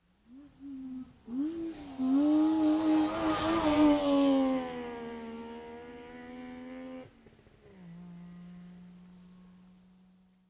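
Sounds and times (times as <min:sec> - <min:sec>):
Saab 92 car passing right to left: 0:01.3 - 0:06.4.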